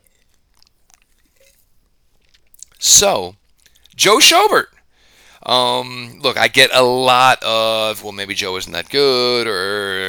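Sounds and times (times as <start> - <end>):
person sipping tea from a cup: 0.0 - 2.8
speech: 2.9 - 3.4, 4.0 - 4.7, 5.4 - 10.0.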